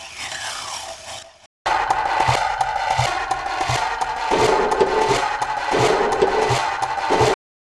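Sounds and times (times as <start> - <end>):
clock effect loop mix: 1.8 - 7.3.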